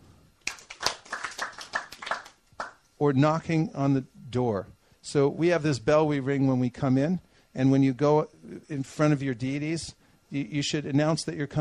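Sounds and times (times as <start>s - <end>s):
hands clapping to announce oneself before entering a home altar area: 0.4s - 2.9s
speech: 3.0s - 11.6s.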